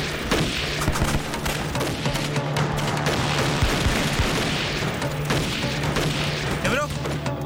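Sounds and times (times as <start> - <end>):
volley of gunfire: 0.0 - 7.3.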